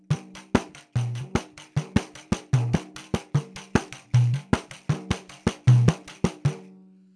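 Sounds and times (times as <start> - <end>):
surdo drum: 0.0 - 6.7
tamborim: 0.0 - 7.0.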